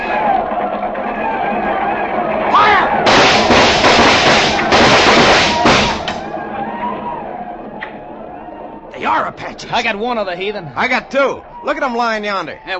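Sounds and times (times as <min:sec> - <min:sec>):
commotion: 0:00.0 - 0:12.7
loud dense gunfire in a frontier fight: 0:01.8 - 0:06.4
speech: 0:09.2 - 0:12.7.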